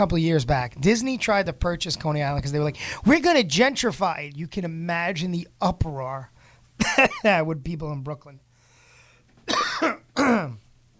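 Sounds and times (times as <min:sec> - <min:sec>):
speech: 0:00.0 - 0:08.4, 0:09.8 - 0:10.6
person coughing with rough throaty coughs: 0:09.4 - 0:10.7.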